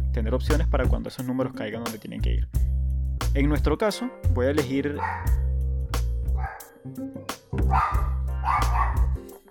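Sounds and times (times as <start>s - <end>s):
speech: 0.2s - 2.7s, 3.3s - 5.4s, 6.8s - 9.0s
dog barking and yelping: 5.0s - 5.5s, 6.3s - 9.2s.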